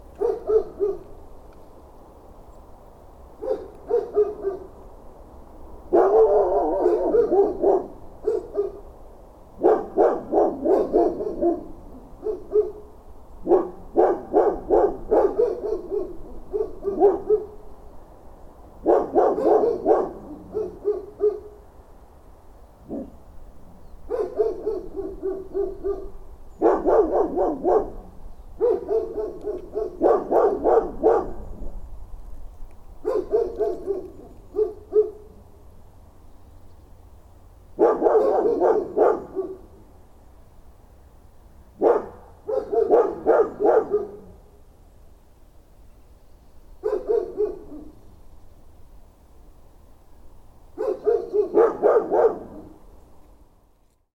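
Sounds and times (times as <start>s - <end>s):
dogs: 0.2s - 1.2s, 3.4s - 4.8s, 5.9s - 8.9s, 9.6s - 17.6s, 18.8s - 21.7s, 22.8s - 23.2s, 24.1s - 31.8s, 33.0s - 35.5s, 37.8s - 39.8s, 41.8s - 44.4s, 46.8s - 48.1s, 50.8s - 52.8s.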